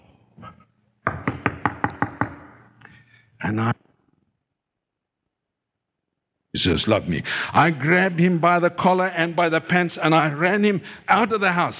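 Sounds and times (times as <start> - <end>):
firm knocking on a door: 1.0 - 2.5
speech: 3.4 - 3.9, 6.6 - 11.7.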